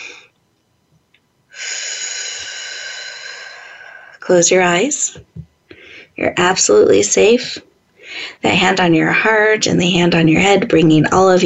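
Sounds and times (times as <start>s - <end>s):
long steady airy breathing: 1.5s - 4.2s, 5.7s - 6.2s, 8.0s - 8.5s
speech: 4.3s - 5.4s, 6.2s - 11.4s.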